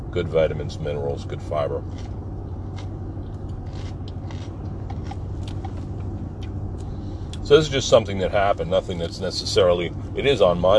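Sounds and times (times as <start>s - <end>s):
steady low rumble: 0.0s - 10.7s
speech: 0.1s - 2.2s, 7.5s - 10.7s
person biting and chewing a raw green pepper: 1.8s - 6.6s.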